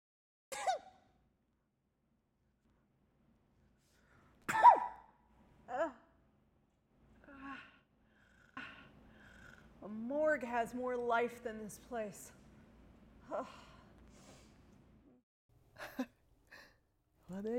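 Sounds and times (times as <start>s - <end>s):
person sneezing: 0.5s - 1.0s, 4.5s - 5.1s
speech: 9.9s - 12.4s, 13.3s - 13.7s, 17.3s - 17.5s.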